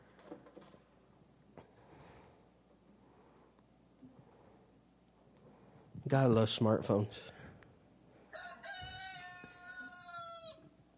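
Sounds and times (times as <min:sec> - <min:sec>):
faint noise: 0:00.0 - 0:10.9
speech: 0:06.1 - 0:07.3
rooster crowing played from a smartphone: 0:08.3 - 0:10.8.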